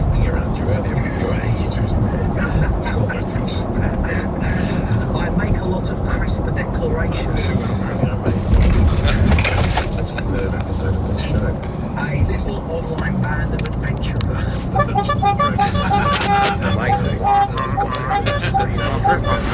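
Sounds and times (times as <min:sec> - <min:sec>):
people talking: 0:00.0 - 0:19.5
steady engine and road noise: 0:00.0 - 0:19.5
laughter: 0:02.3 - 0:03.2, 0:07.3 - 0:12.0, 0:14.4 - 0:19.5
vehicle horn toots on a road: 0:14.6 - 0:19.5.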